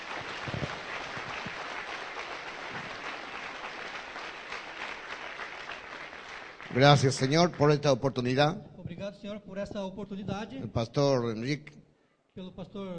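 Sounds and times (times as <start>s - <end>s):
crowd applauding: 0.0s - 8.0s
speech: 6.8s - 11.8s, 12.4s - 12.9s.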